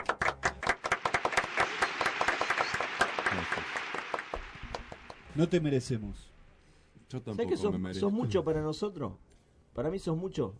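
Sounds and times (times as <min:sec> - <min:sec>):
applause: 0:00.0 - 0:05.6
speech: 0:05.4 - 0:06.3, 0:07.1 - 0:09.2, 0:09.8 - 0:10.5.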